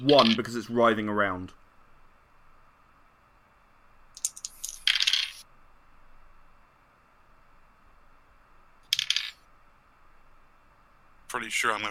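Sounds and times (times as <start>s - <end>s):
dice rolling across a hard tabletop: 0.0s - 0.5s, 4.2s - 5.4s, 8.9s - 9.4s
speech: 0.0s - 1.6s, 11.4s - 11.8s.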